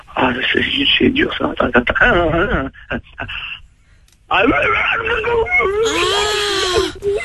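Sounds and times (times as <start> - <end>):
speech: 0.3 - 3.6, 4.3 - 7.2
person imitating a long wavering werewolf howl: 5.5 - 6.9.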